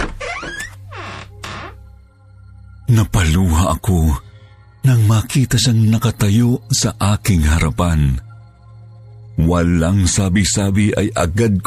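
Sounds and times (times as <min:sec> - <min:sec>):
door hinges squeaking and creaking as a door is opened: 0:00.0 - 0:01.8
speech: 0:02.9 - 0:08.3, 0:09.4 - 0:11.6.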